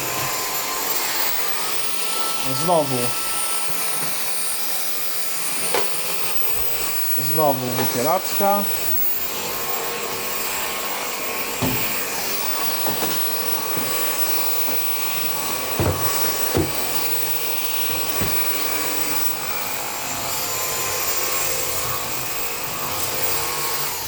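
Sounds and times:
vacuum cleaner running: 0.0 - 24.0
speech: 2.4 - 3.3, 7.3 - 8.8
vacuum cleaner nozzle knocking against things: 11.6 - 19.0.

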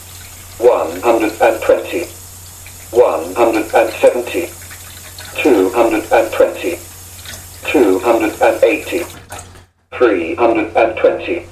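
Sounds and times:
tap water running into a measuring jug in a sink: 0.0 - 9.6
speech: 0.6 - 2.2, 2.9 - 4.6, 5.4 - 6.9, 7.7 - 9.2, 9.9 - 11.4.

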